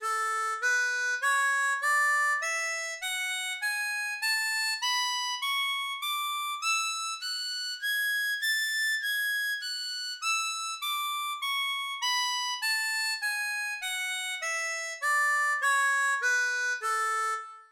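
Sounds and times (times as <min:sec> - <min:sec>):
harmonica playing A major scales: 0:00.0 - 0:17.7.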